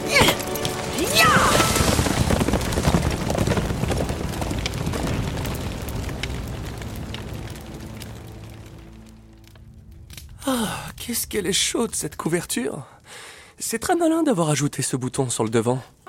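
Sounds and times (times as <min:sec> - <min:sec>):
horse hooves galloping: 0:00.2 - 0:08.8
speech: 0:11.1 - 0:13.0, 0:13.6 - 0:16.0.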